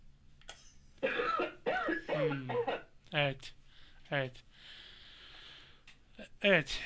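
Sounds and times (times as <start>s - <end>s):
patient coughing on request: 1.0s - 2.9s
speech: 2.2s - 4.8s, 6.2s - 6.8s
faint breath or small throat sound: 3.7s - 5.9s.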